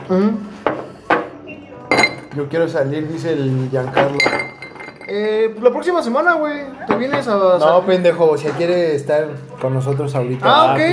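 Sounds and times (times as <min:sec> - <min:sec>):
speech: 0:00.1 - 0:00.5, 0:02.3 - 0:04.5, 0:05.1 - 0:10.9
ice cubes clinking into drinking glasses as drinks are poured: 0:04.0 - 0:05.2.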